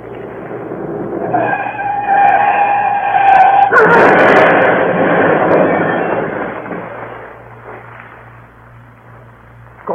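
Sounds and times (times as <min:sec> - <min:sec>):
grinding, rumbling car wreckage noise: 0:00.0 - 0:08.6
skidding car tyres squealing: 0:00.0 - 0:09.6
speeding car engine roaring: 0:00.0 - 0:09.8
car crash: 0:00.2 - 0:08.3.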